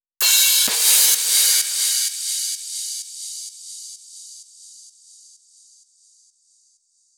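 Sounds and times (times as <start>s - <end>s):
crash cymbal: 0.2s - 4.9s.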